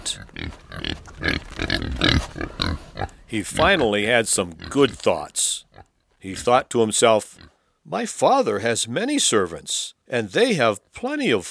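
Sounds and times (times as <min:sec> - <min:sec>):
pigs grunting at feeding: 0:00.0 - 0:05.9, 0:07.2 - 0:07.6
speech: 0:03.3 - 0:05.5, 0:06.2 - 0:11.4.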